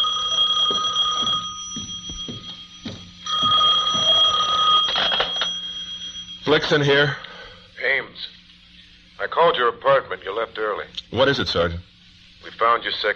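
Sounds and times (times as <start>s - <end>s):
office telephone ringing with a bright electronic tone: 0.0s - 7.2s
speech: 6.5s - 7.2s, 8.0s - 8.4s, 9.2s - 13.1s.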